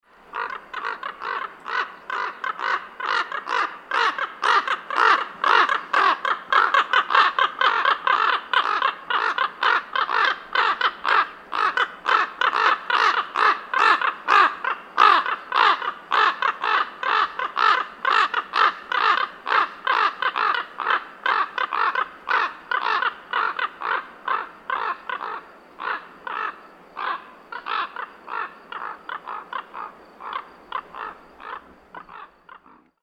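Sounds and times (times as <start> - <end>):
common raven: 0.3 - 33.0.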